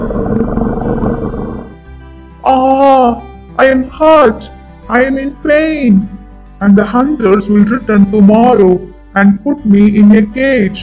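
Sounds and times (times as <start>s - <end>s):
lion roaring in pain: 0.0s - 1.8s
speech: 3.6s - 10.8s.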